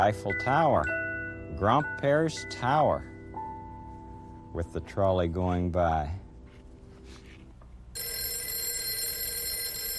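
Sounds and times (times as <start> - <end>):
speech: 0.0 - 1.0, 1.6 - 3.1, 4.6 - 6.2
telephone ringing with an electronic trill: 8.0 - 9.9.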